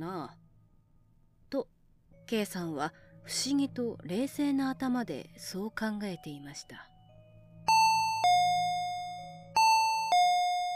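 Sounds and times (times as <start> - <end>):
speech: 0.0 - 0.4, 1.5 - 6.9
electronic two-tone intercom doorbell chime: 7.2 - 10.7.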